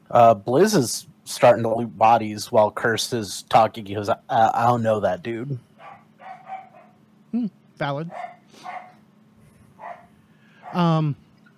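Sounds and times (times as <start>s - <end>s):
low steady hum: 0.0s - 11.5s
speech: 0.1s - 5.7s, 7.3s - 8.8s, 10.7s - 11.2s
dog barking in the background: 5.8s - 7.0s, 8.1s - 9.0s, 9.8s - 10.9s.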